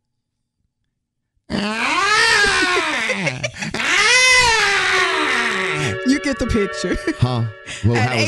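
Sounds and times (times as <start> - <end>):
person imitating a crying toddler: 1.5 - 6.0
laughter: 2.2 - 3.8, 6.7 - 8.2
speech: 6.3 - 8.2.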